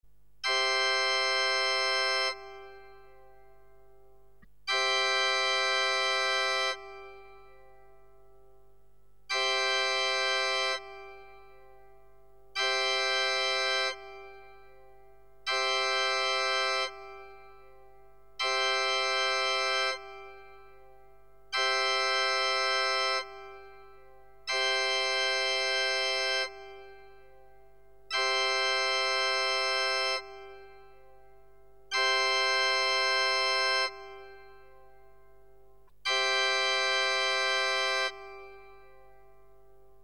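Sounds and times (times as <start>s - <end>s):
sacred organ with mixture stop: 0.4s - 40.0s.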